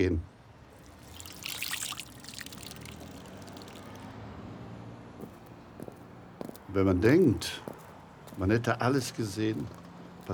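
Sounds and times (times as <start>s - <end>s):
speech: 0.0s - 0.3s, 6.8s - 7.7s, 8.4s - 10.3s
water trickling and splashing into a drinking water bowl: 0.7s - 4.1s.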